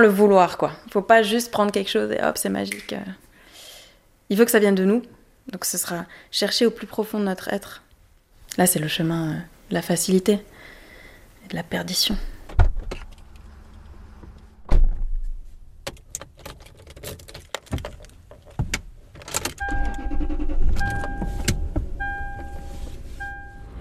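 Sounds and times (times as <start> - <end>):
speech: 0.0 - 3.2, 4.3 - 7.8, 8.5 - 10.5, 11.5 - 12.3
clicks and clunks inside a car: 12.5 - 21.9
car electronic warning chime pinging: 19.6 - 23.8
solid thump of a car door shutting: 19.6 - 23.8.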